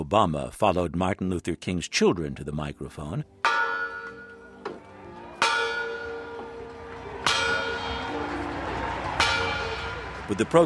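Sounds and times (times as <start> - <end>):
speech: 0.0 - 3.6, 10.3 - 10.6
church bells pealing in celebration: 3.4 - 10.6.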